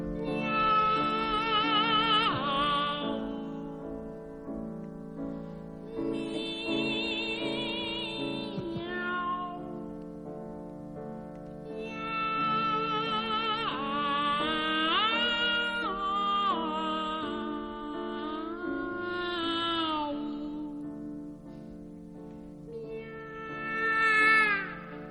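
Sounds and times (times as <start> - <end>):
soprano and mezzo-soprano singing a comic operatic duet of meows: 0.2 - 3.8, 5.9 - 9.9, 11.7 - 20.5, 22.7 - 25.0.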